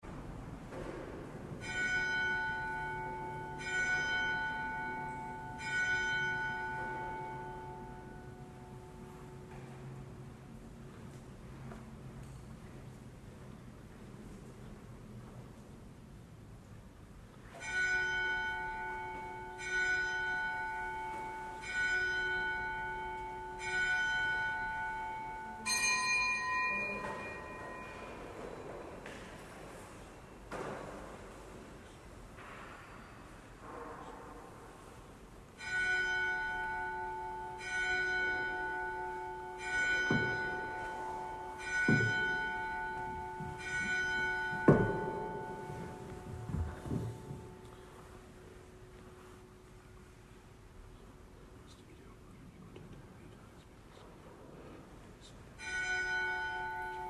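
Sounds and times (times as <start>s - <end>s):
church bell ringing: 0.8s - 12.5s, 17.5s - 29.5s, 34.8s - 51.0s, 55.6s - 57.0s.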